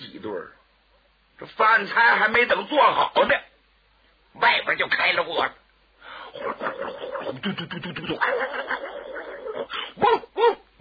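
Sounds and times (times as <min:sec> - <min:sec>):
speech: 0:00.2 - 0:00.6, 0:01.4 - 0:03.5, 0:04.4 - 0:05.6, 0:06.3 - 0:10.6
person imitating dogs barking: 0:06.3 - 0:10.7.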